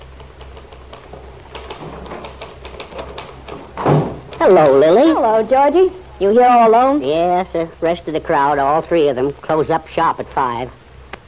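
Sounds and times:
typewriter keys clacking in an office: 0.0s - 4.4s
speech: 4.4s - 10.8s.

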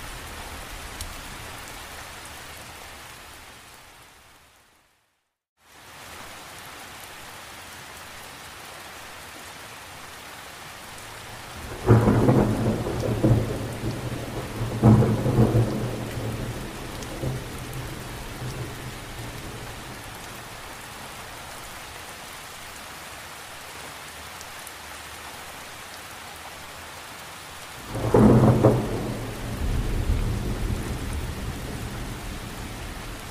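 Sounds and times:
steady night rain in Costa Rica: 0.0s - 33.2s
thunder rumbling at night in Costa Rica: 11.6s - 20.6s, 27.8s - 33.2s.

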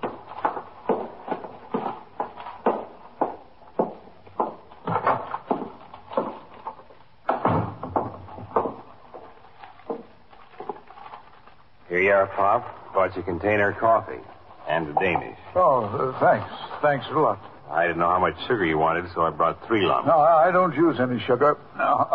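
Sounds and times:
heavier thumps of front door: 0.0s - 10.3s
detective's footsteps crossing a hard floor: 0.0s - 10.8s
police station house front door opening and closing: 7.3s - 8.9s
speech: 12.2s - 22.1s.

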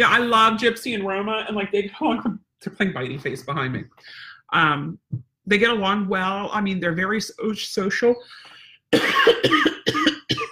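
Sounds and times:
speech: 0.0s - 10.1s
harsh coughs: 8.9s - 10.5s.

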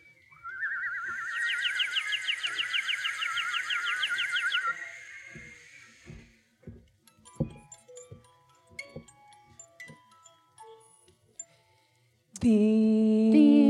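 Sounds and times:
little birds singing with bright rapid trilling: 0.2s - 6.2s
clicks and light tapping: 4.6s - 12.5s.

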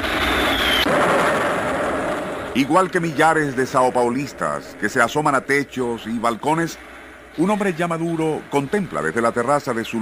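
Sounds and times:
warplanes roaring overhead: 0.0s - 10.0s
speech: 2.6s - 10.0s.

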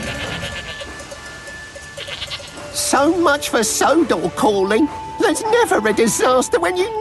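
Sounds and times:
goats bleating crossing a railway level crossing: 0.0s - 1.0s, 2.0s - 2.6s
goat bells ringing: 0.0s - 6.9s
speech: 3.0s - 6.9s.

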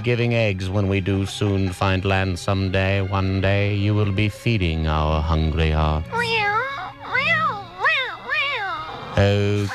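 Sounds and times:
speech: 0.0s - 6.6s, 9.2s - 9.7s
cat meowing: 6.2s - 9.1s.

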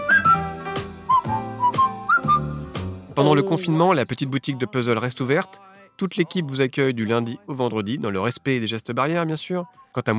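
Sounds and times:
bright whistled melody: 0.0s - 2.9s, 7.6s - 8.6s
steady bouncy instrumental backing: 0.0s - 10.1s
speech: 3.2s - 10.1s.

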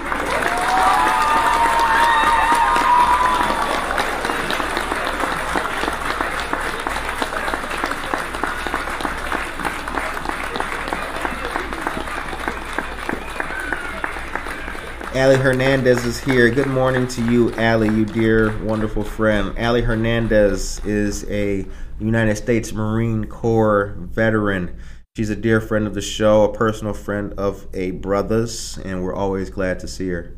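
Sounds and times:
people cheering: 0.0s - 21.1s
crowd clapping: 0.0s - 21.4s
people whistling: 11.3s - 15.0s
speech: 15.2s - 30.3s.

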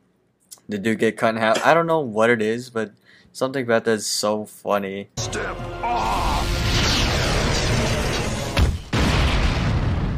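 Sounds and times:
speech: 0.7s - 6.5s
rumbling explosion sound effect: 6.4s - 10.1s.

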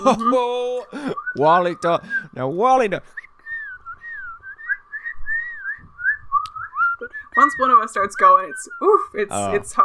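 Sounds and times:
speech: 0.0s - 3.2s, 7.4s - 9.8s
two people whistling in harmony: 3.4s - 8.8s.

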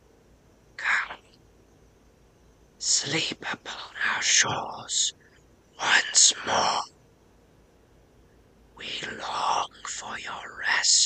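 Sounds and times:
eerie breathy whisper played forwards and backwards: 0.8s - 1.3s, 2.8s - 6.9s, 8.8s - 11.0s
speech: 2.8s - 5.2s, 5.8s - 6.9s.

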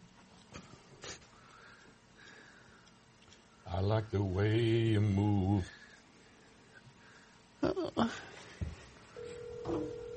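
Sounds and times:
speech: 3.8s - 5.8s
steady electronic telephone tone: 9.2s - 10.1s.

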